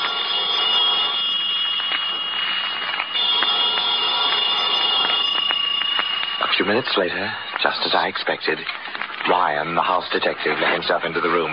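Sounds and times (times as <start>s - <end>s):
telephone ringing with a bright metallic trill: 0.0s - 8.4s
speech: 6.7s - 11.5s.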